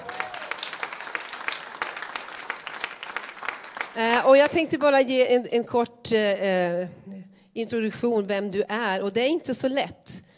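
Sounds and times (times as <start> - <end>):
room full of people applauding: 0.0 - 4.6
speech: 4.0 - 10.2.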